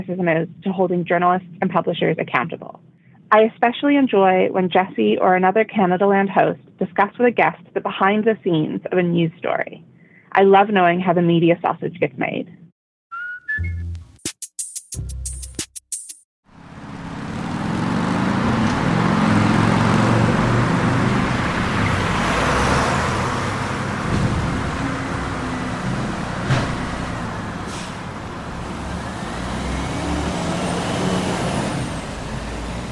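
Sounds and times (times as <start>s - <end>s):
speech: 0.0s - 12.6s
heavy traffic of trucks, buses and cars on a major city street: 16.5s - 32.9s.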